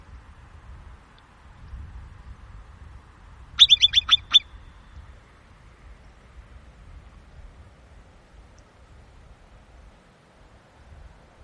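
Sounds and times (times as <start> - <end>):
Himalayan marmot shrill chirps: 3.6 - 4.5.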